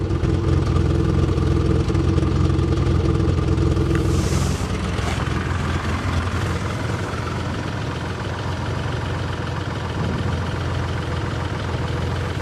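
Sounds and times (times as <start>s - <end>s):
car V6 engine idling roughly: 0.0s - 12.4s.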